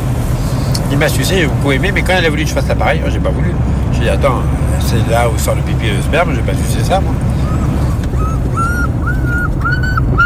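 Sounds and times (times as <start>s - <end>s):
steady low rumble of noise: 0.0s - 10.2s
speech: 0.9s - 7.5s
dog whimpering: 7.1s - 10.2s.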